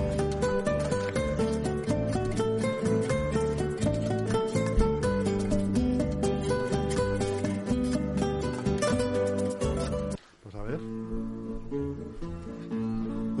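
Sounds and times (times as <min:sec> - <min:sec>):
Spanish student minstrel band music with strummed and plucked strings led by bandurria: 0:00.0 - 0:13.3.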